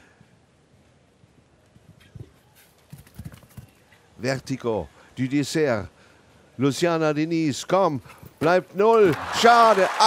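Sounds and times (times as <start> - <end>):
steady hiss: 0.0 - 10.0
hoofbeats of a galloping horse: 2.8 - 3.8
speech: 4.2 - 6.0, 6.6 - 10.0.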